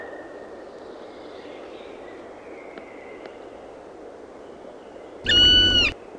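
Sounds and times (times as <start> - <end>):
faint background hiss: 0.2 - 6.1
black woodpecker ringing call: 5.3 - 6.0.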